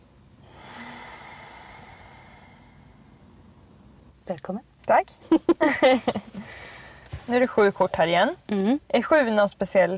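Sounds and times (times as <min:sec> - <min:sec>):
deep breathing: 0:00.4 - 0:03.6, 0:06.4 - 0:07.3
speech: 0:04.3 - 0:06.7, 0:07.3 - 0:09.9.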